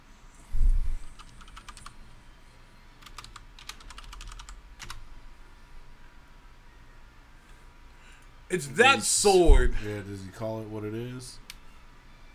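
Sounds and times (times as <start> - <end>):
typing on a computer keyboard: 1.1 - 2.0, 3.0 - 5.0
speech: 8.5 - 11.4.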